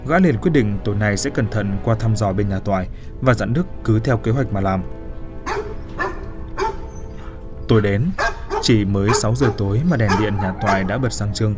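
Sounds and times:
speech: 0.1 - 5.0, 7.7 - 11.5
dog barking: 5.4 - 11.2
faint dog yelp: 5.5 - 7.4, 8.2 - 11.0.

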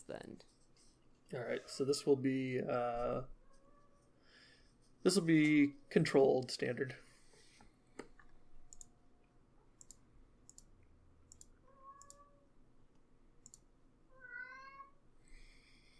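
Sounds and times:
speech: 1.3 - 3.4, 5.0 - 7.0
cat meowing: 11.6 - 12.4, 14.1 - 15.0.

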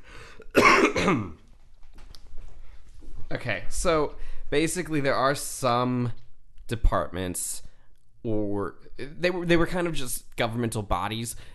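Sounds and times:
raspy cough: 0.4 - 1.4
speech: 1.0 - 1.4, 3.3 - 11.5.

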